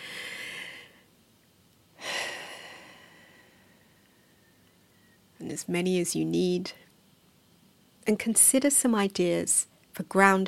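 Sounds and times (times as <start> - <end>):
slow deep breath: 0.0 - 1.1, 2.0 - 5.2
speech: 5.4 - 6.9, 8.1 - 10.4.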